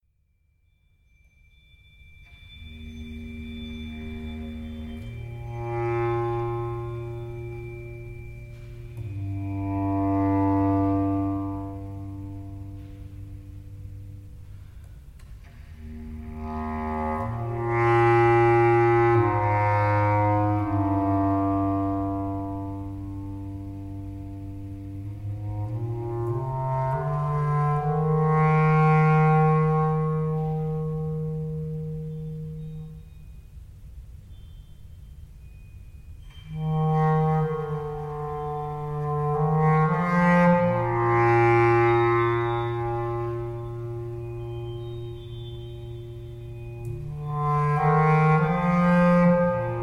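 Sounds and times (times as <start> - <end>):
bass clarinet: 2.2 - 49.8.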